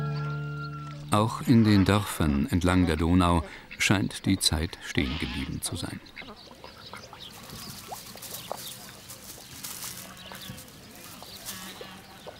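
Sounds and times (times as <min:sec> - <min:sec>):
flock of geese honking in a village: 0:00.0 - 0:12.3
poultry cackling in a village: 0:00.0 - 0:12.3
speech: 0:01.1 - 0:06.4.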